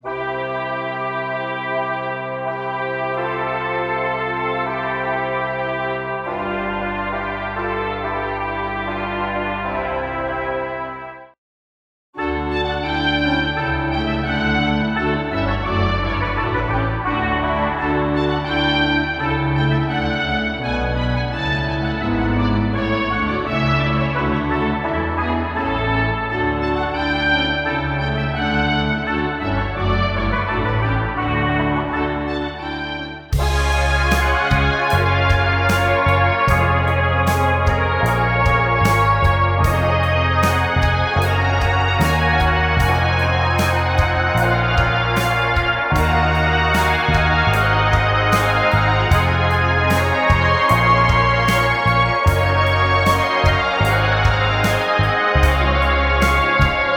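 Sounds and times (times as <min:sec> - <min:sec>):
trumpet: 0:00.0 - 0:11.4, 0:12.2 - 0:56.9.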